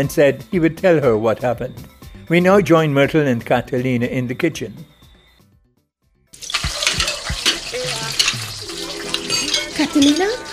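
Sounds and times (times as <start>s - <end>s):
speech: 0.0s - 4.9s, 10.0s - 10.5s
crockery rattling while washing dishes: 6.4s - 10.5s
dishware clattering in a kitchen: 6.4s - 10.5s
water splashing while washing dishes by hand: 6.4s - 10.5s.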